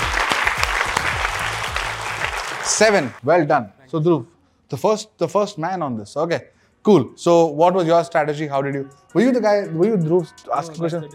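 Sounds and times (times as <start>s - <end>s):
audience applause: 0.0s - 3.2s
speech: 2.7s - 11.1s.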